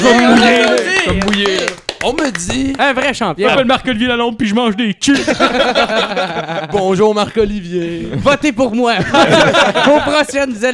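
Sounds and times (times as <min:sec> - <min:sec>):
excited voices talking and cheering: 0:00.0 - 0:01.8
small group hand clapping: 0:00.0 - 0:03.2
speech: 0:00.4 - 0:10.7
laughter: 0:05.1 - 0:07.0, 0:08.9 - 0:10.6.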